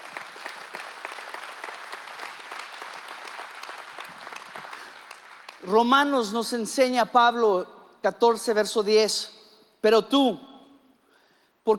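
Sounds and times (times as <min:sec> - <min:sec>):
audience applauding: 0:00.0 - 0:05.6
speech: 0:05.6 - 0:10.5.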